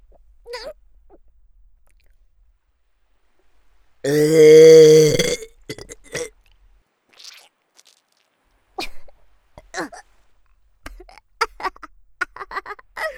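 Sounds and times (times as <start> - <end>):
long loud belch with a deep rasping tone: 4.1 - 6.3.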